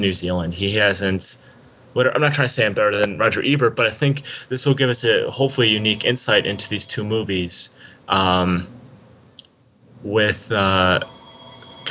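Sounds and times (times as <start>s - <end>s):
speech: 0.0s - 8.8s, 10.0s - 11.2s
faint hum: 0.0s - 11.8s
phone ringtone: 5.6s - 7.3s, 11.0s - 11.8s.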